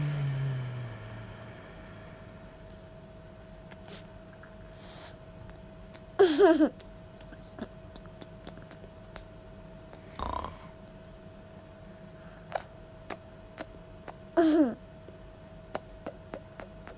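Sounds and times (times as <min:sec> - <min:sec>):
faint constant whine: 0:00.0 - 0:16.9
steady low hum: 0:00.0 - 0:16.9
short bursts of laughter: 0:06.2 - 0:06.8.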